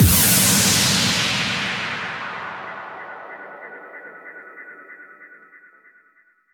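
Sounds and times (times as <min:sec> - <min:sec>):
effect hit at 140 BPM: 0:00.0 - 0:04.3.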